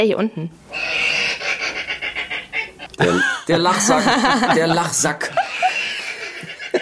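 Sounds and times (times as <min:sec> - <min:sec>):
speech: 0:00.0 - 0:00.9, 0:03.0 - 0:05.6
hedgehog raspy wheezing calls: 0:00.6 - 0:03.2
laughter: 0:02.8 - 0:06.8.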